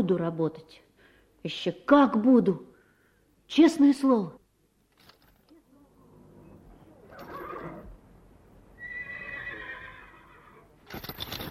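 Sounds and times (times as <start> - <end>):
speech: 0.0 - 2.7, 3.5 - 4.4
low hum: 5.4 - 8.8
horses being harnessed at a stable whinnying and neighing: 7.0 - 8.0, 8.8 - 10.7.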